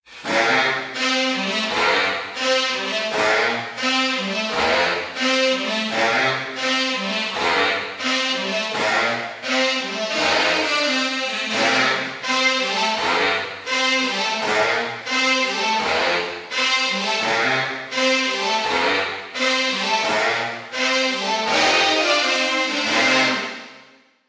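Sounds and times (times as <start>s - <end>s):
saxophone with wet effect: 0.0s - 24.0s.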